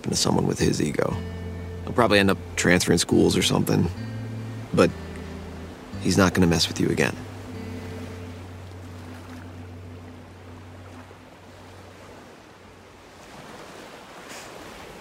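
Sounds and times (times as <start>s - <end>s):
speech: 0.0s - 4.1s, 4.7s - 5.0s, 6.0s - 7.3s
ocean waves: 0.0s - 15.0s
low engine-like hum: 1.2s - 12.5s.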